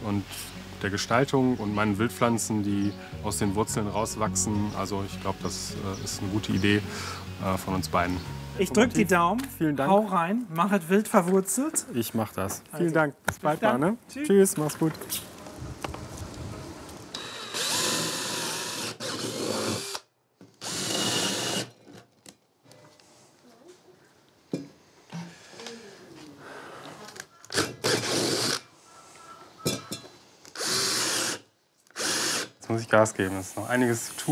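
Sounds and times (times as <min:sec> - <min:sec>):
speech: 0:00.0 - 0:15.3, 0:32.9 - 0:34.2
power drill boring holes for test tubes: 0:17.1 - 0:21.8, 0:27.5 - 0:28.6, 0:30.5 - 0:32.6.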